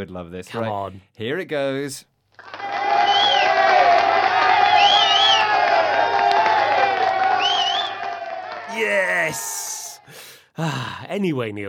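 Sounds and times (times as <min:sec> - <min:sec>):
speech: 0:00.0 - 0:02.7, 0:08.8 - 0:11.6
large crowd cheering and applauding: 0:02.4 - 0:10.1
whoops and shouting voices: 0:04.6 - 0:10.1.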